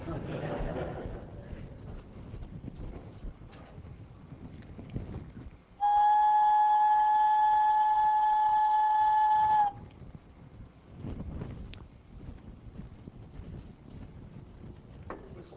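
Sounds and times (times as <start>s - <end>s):
laughter: 0.0s - 1.9s
flute playing high steady note: 5.8s - 9.8s.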